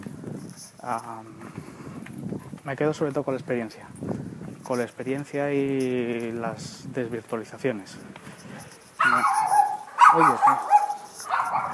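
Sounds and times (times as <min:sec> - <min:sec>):
speech: 0:00.8 - 0:01.7, 0:02.6 - 0:08.2, 0:09.0 - 0:09.4, 0:10.1 - 0:10.7
dog barking: 0:09.0 - 0:11.7.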